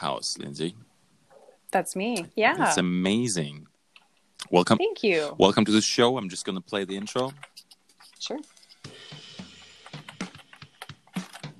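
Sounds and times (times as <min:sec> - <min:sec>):
speech: 0:00.0 - 0:00.9, 0:01.7 - 0:03.7, 0:04.4 - 0:07.6, 0:08.2 - 0:08.5
faint hum: 0:00.0 - 0:08.4
typing on a computer keyboard: 0:09.8 - 0:11.5.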